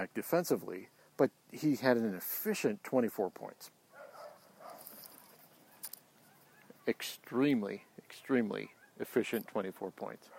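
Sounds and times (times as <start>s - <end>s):
speech: 0.0s - 3.8s, 6.9s - 10.3s
quiet hiss: 0.0s - 10.3s
dog barking: 3.9s - 4.8s.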